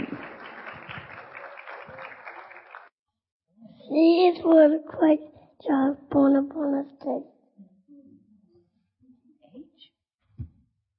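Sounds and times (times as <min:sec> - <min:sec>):
audience of parents applauding a nursery children's presentation: 0:00.0 - 0:02.9
speech: 0:04.3 - 0:07.3.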